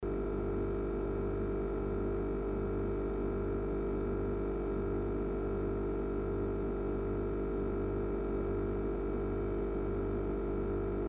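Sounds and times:
refrigerator running: 0.1s - 11.0s.

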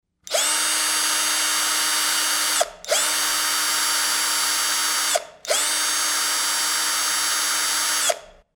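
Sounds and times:
screwdriver: 0.3s - 8.4s.

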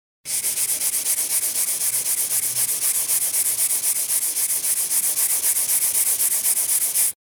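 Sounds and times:
sponge: 0.3s - 7.2s.

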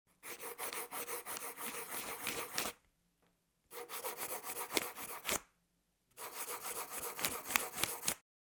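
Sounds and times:
pencil: 0.1s - 2.8s, 3.7s - 5.5s, 6.2s - 8.2s.

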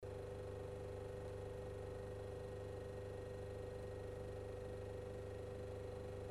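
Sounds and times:
refrigerator humming: 0.1s - 6.3s.

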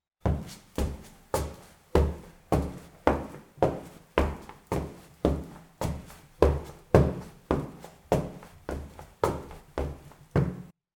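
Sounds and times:
footsteps: 0.2s - 10.8s.

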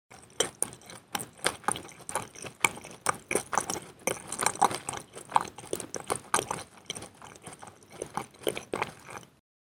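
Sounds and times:
chewing: 0.1s - 9.4s.

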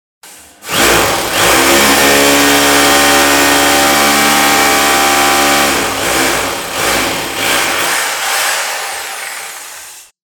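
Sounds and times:
rotary hammer drill: 0.2s - 10.2s.

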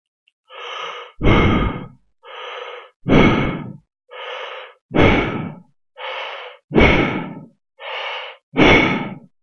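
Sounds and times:
breathing: 0.5s - 9.3s.

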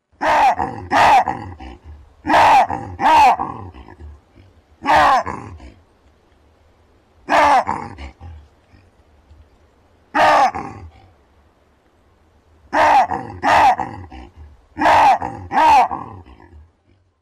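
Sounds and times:
baboon calls: 0.2s - 5.8s, 7.3s - 8.8s, 10.1s - 11.0s, 12.7s - 16.5s.

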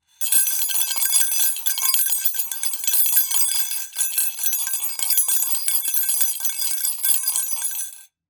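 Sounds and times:
spoon in glass: 0.2s - 8.1s.

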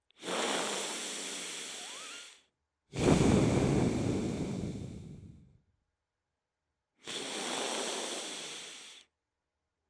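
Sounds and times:
breathing: 0.1s - 5.6s, 7.0s - 9.1s.

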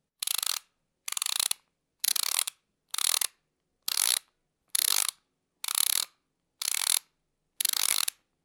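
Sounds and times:
ratchet clicking: 0.2s - 3.3s, 3.9s - 4.2s, 4.8s - 7.0s, 7.6s - 8.2s.

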